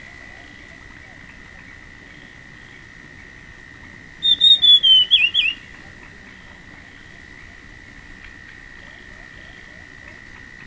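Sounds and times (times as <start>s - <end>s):
constant high-pitched tone: 0.0s - 10.6s
dusky fulvetta Alcippe brunnea whistling clear notes: 4.2s - 5.6s.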